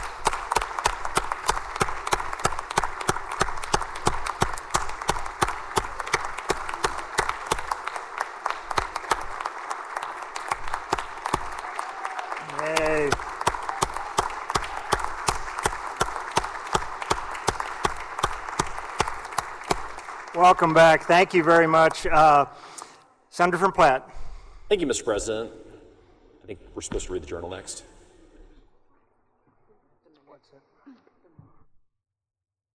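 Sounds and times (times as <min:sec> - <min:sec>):
many hands clapping in a state Senate chamber: 0:00.0 - 0:22.6
speech: 0:20.4 - 0:22.8, 0:23.4 - 0:25.6, 0:26.5 - 0:27.9.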